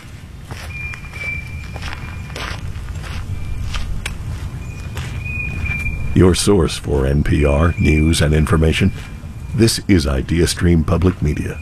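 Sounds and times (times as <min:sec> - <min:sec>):
footsteps crunching on a walk in the woods: 0:00.0 - 0:11.6
continuous low rumble: 0:02.4 - 0:11.6
speech: 0:06.2 - 0:11.6.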